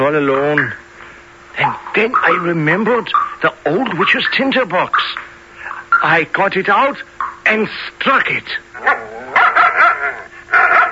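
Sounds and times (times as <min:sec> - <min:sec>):
speech: 0:00.0 - 0:00.8, 0:01.6 - 0:05.3, 0:06.0 - 0:09.4
dog barking and whining yelps: 0:08.8 - 0:10.9.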